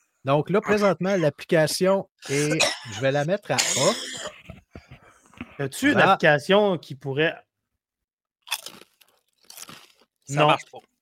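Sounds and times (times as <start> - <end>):
speech: 0.2 - 4.6, 5.6 - 7.5, 10.3 - 10.9
person biting into a crisp potato chip: 8.4 - 10.1.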